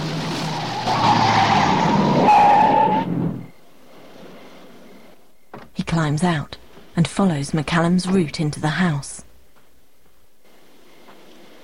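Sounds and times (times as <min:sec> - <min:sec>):
car tyres skidding as the car comes to a halt: 0:00.0 - 0:04.7
speech: 0:06.0 - 0:09.2.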